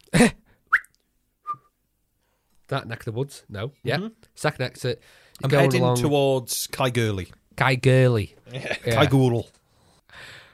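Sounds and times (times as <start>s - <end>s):
speech: 0.2s - 0.4s, 2.7s - 9.6s
person whistling in imitation of a French traffic police whistle: 0.7s - 1.8s.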